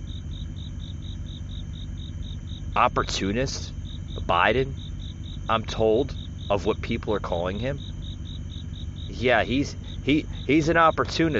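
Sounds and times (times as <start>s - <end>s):
crickets chirping: 0.0s - 11.3s
low background rumble: 0.0s - 11.3s
speech: 2.8s - 4.8s, 5.5s - 7.9s, 9.1s - 11.3s.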